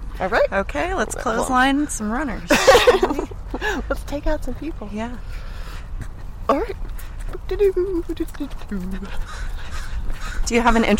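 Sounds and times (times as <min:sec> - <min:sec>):
speech: 0:00.2 - 0:05.5, 0:06.5 - 0:06.9, 0:07.5 - 0:09.5, 0:10.5 - 0:10.9
laughter: 0:02.5 - 0:03.9
crow cawing: 0:09.2 - 0:10.9.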